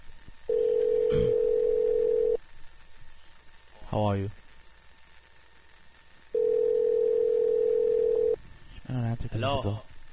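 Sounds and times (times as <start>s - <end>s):
steady telephone dial tone: 0.5s - 2.4s, 6.4s - 8.3s
speech: 3.9s - 4.4s, 9.3s - 9.9s.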